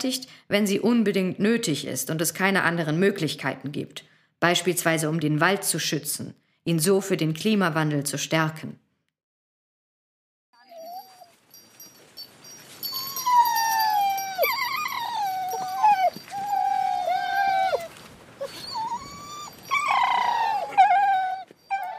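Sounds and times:
speech: 0.0 - 8.8
excited hunting dogs whining and yelping: 10.6 - 11.8, 12.4 - 21.9.

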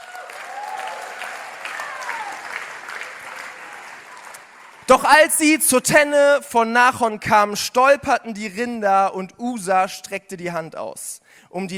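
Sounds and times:
faint whoops or voices: 0.0 - 2.6
crowd applauding: 0.0 - 5.1
speech: 4.9 - 11.7.

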